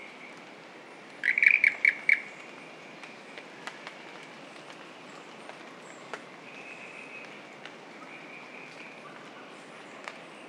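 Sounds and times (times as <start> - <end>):
Ischnocnema holti frog chirping: 1.2 - 2.3.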